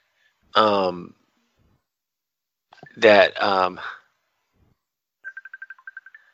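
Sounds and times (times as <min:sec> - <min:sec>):
speech: 0:00.6 - 0:01.2, 0:03.0 - 0:04.0
phone ringing with electronic trill: 0:05.2 - 0:06.3.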